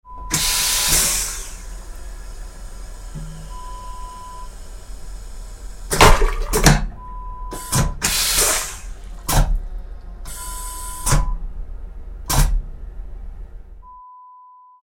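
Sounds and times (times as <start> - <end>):
train toilet flushing: 0.2 - 11.1.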